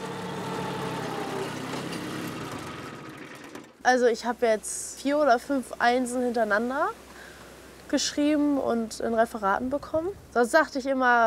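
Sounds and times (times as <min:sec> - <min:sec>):
tractor engine running while driven: 0:00.0 - 0:03.8
speech: 0:03.8 - 0:07.0, 0:07.9 - 0:11.2.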